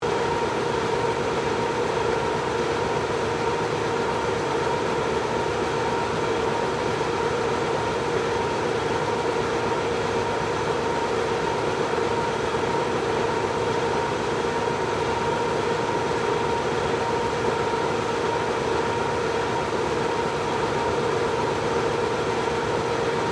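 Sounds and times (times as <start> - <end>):
industrial printing press running: 0.1 - 23.3.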